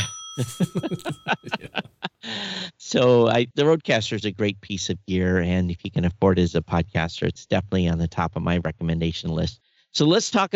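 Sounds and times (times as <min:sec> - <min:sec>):
faint steady ringing tones: 0:00.0 - 0:01.7
small bell played from a sound pad: 0:00.0 - 0:02.0
laughter: 0:00.0 - 0:02.7
speech: 0:00.4 - 0:10.5.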